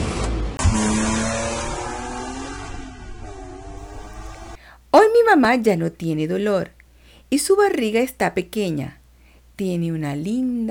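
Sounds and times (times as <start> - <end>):
car engine starting and pulling away: 0.0 - 4.6
speech: 5.3 - 9.0, 9.6 - 10.6.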